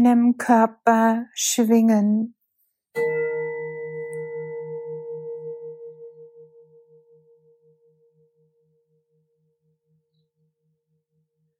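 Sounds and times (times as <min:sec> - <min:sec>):
speech: 0:00.0 - 0:02.4
single large gong struck and ringing: 0:03.0 - 0:07.8.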